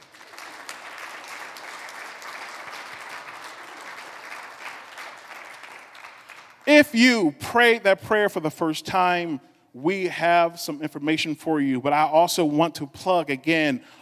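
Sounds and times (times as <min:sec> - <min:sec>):
audience clapping hands: 0:00.0 - 0:07.1
speech: 0:06.8 - 0:14.0.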